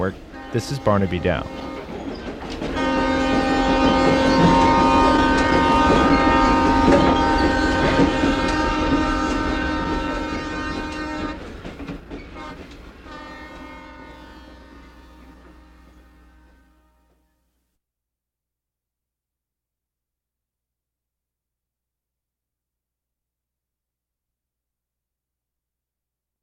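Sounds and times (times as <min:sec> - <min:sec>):
speech: 0:00.0 - 0:01.6
train rumbling past: 0:00.0 - 0:17.3.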